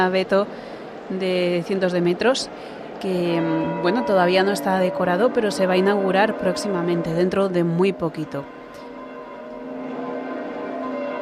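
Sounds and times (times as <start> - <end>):
speech: 0.0 - 8.6
church bells ringing in St Peter's Square at the Vatican after the Sunday Angelus: 2.6 - 11.2.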